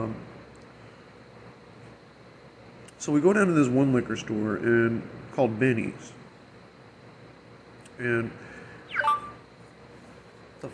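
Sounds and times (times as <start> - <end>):
speech: 3.0 - 6.2, 8.0 - 8.5
phone app notification chime: 9.0 - 9.4.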